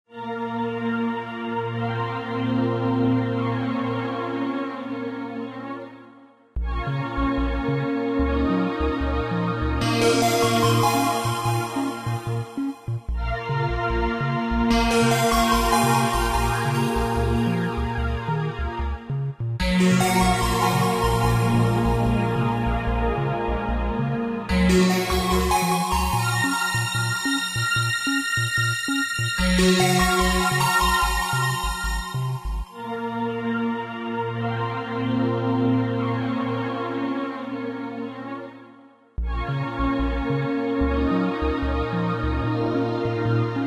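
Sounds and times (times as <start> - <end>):
ambient music: 0.2 - 43.6.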